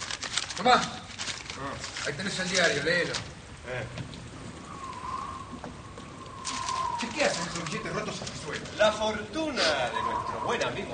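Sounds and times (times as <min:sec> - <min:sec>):
steady rain pattering on a surface: 0:00.0 - 0:10.9
speech: 0:00.6 - 0:01.0, 0:01.6 - 0:04.3, 0:07.0 - 0:10.9.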